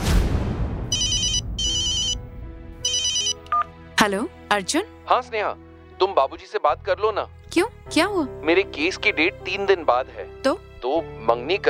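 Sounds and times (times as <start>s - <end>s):
phone ringtone ringing for an incoming call: 0.9s - 3.7s
speech: 4.0s - 11.6s.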